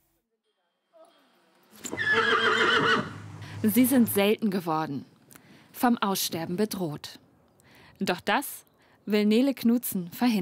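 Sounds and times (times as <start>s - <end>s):
Schleswig coldblood horse whinnying at a breeder's in Horsbüll, northern Germany: 1.8s - 3.3s
speech: 3.6s - 5.1s, 5.8s - 7.2s, 8.0s - 10.4s.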